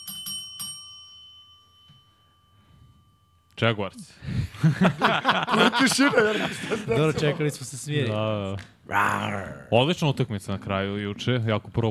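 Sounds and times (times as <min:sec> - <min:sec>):
small bell being struck: 0:00.0 - 0:03.7
speech: 0:03.6 - 0:11.8
laughter: 0:04.5 - 0:07.8.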